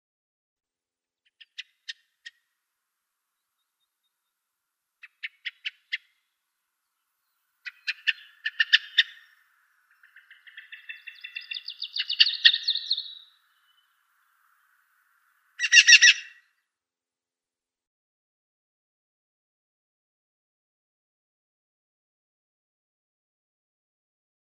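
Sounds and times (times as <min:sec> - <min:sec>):
Eyebrowed Thrush calls: 0:01.3 - 0:02.5, 0:05.0 - 0:06.2, 0:07.6 - 0:14.8, 0:15.5 - 0:16.4.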